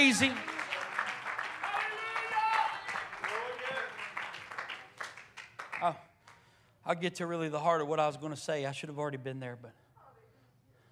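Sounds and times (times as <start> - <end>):
speech: 0.0 - 0.5, 5.8 - 6.1, 6.8 - 9.8
crowd clapping along: 0.0 - 6.6.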